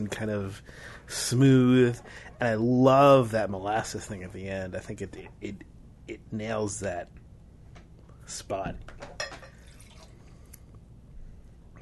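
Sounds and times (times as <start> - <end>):
speech: 0.0 - 7.2, 8.3 - 9.1
water sloshing while rinsing a drinking glass: 9.2 - 10.4.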